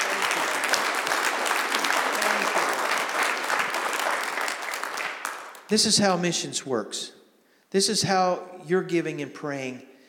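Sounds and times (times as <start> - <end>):
church congregation applauding with hand clapping: 0.0 - 5.8
speech: 5.7 - 9.9.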